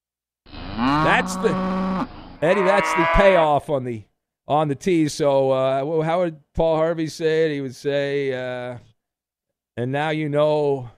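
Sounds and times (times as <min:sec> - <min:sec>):
single cow mooing: 0:00.5 - 0:03.4
speech: 0:01.1 - 0:08.9, 0:09.8 - 0:10.9.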